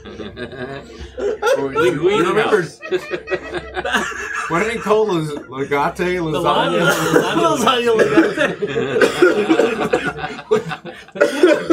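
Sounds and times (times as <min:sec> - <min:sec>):
laughter: 0:00.0 - 0:11.7
speech: 0:00.3 - 0:09.7
person coughing and choking after inhaling root beer: 0:07.9 - 0:10.2, 0:11.1 - 0:11.7.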